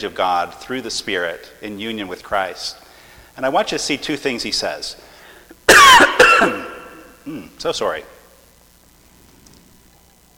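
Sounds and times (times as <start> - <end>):
speech: 0.0 - 2.8, 3.4 - 5.1, 5.9 - 8.2
sharp loud coughs: 5.7 - 7.6.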